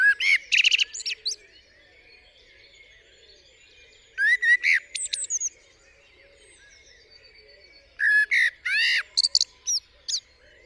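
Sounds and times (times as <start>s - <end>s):
common blackbird singing on a studio roof in the UK: 0.0s - 10.6s.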